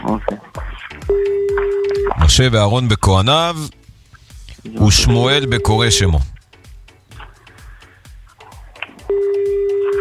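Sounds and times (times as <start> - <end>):
loud sustained steady telephone tone: 1.1 - 2.2, 4.8 - 6.3, 9.1 - 9.9
telephone keypad beep: 1.1 - 2.3, 5.1 - 6.2, 9.1 - 9.9
speech: 2.3 - 3.8, 4.6 - 6.3.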